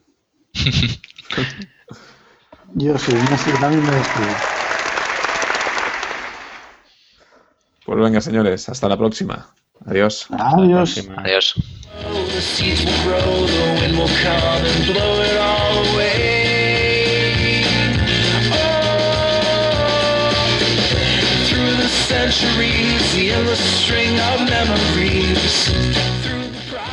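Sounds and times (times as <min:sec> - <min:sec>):
laughter: 0:00.6 - 0:01.9, 0:02.7 - 0:06.7
speech: 0:00.6 - 0:04.5, 0:07.9 - 0:15.8, 0:22.2 - 0:26.4
outro instrumental background music track: 0:11.9 - 0:26.9.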